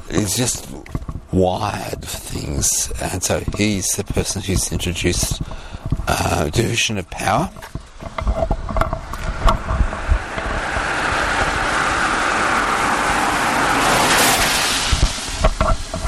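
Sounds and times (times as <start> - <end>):
speech: 0.1 - 7.8
vehicle passing by: 9.2 - 16.0.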